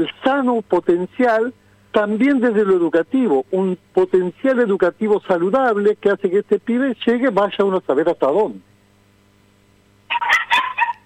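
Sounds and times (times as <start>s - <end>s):
speech: 0.0s - 8.7s
female dog barking: 10.1s - 11.0s.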